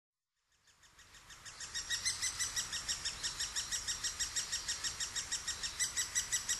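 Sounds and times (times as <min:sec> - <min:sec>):
Great spotted woodpecker calls in Sapporo: 0:01.3 - 0:06.5.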